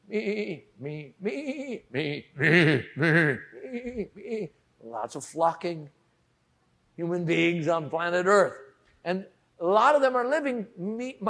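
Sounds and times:
human voice imitating sheep bleating: 0.0 - 4.5
speech: 0.1 - 6.0, 7.0 - 11.2.

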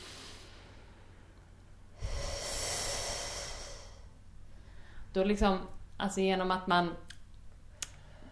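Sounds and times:
person inhaling: 0.0 - 1.3, 1.9 - 5.1
person holding a long hissing S sound: 2.0 - 4.2
speech: 5.2 - 7.1.

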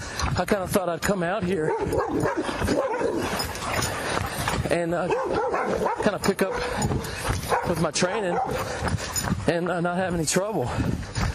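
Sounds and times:
speech: 0.4 - 11.0
dogs barking at a fence: 1.6 - 3.8, 5.0 - 9.0.

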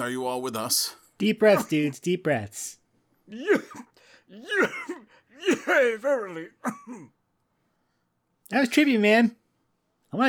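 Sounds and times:
speech: 0.0 - 7.2, 8.5 - 9.4
voiced hacking coughs: 1.4 - 2.0, 3.3 - 7.2
throat clearing: 3.3 - 7.2.

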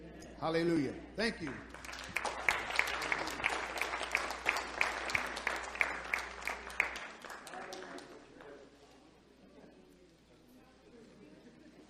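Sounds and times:
speech: 0.4 - 1.8
crowd applause: 1.4 - 8.5.

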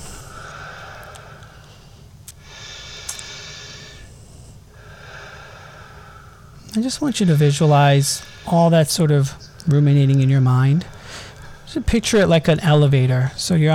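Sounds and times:
slow deep breaths in and out during a guided relaxation exercise: 0.0 - 9.5, 10.8 - 11.8
speech: 6.8 - 13.7.

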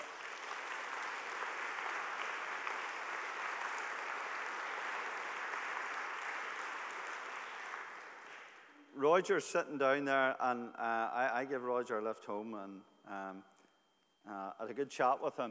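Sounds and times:
audience clapping: 0.0 - 8.7
speech: 9.0 - 13.5, 14.3 - 15.4.

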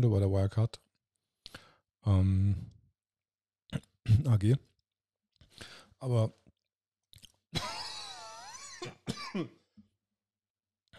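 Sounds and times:
speech: 0.0 - 0.9, 1.5 - 2.8, 3.7 - 4.7, 5.6 - 6.4, 8.8 - 9.6
coughing fit: 8.6 - 9.7.

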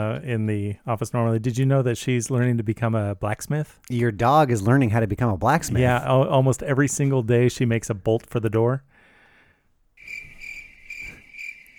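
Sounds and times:
speech: 0.0 - 8.9
crickets chirping: 10.0 - 11.7.

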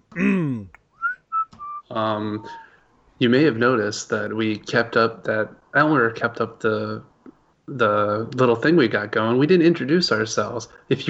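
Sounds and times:
person mimicking a union break whistle: 0.2 - 2.7
speech: 1.9 - 2.6, 3.2 - 7.1, 7.7 - 11.0.

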